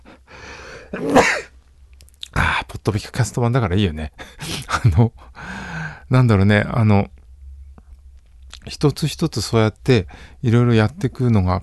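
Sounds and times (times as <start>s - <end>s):
person sneezing: 0.9s - 1.5s
speech: 0.9s - 1.5s, 2.8s - 5.5s, 6.1s - 7.2s, 8.7s - 11.6s.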